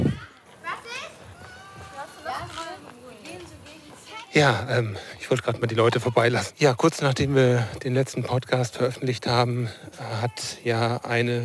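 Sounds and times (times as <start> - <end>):
children's higher shouts: 0.0 - 2.8
children playing in the background: 0.0 - 11.4
speech: 4.4 - 11.4.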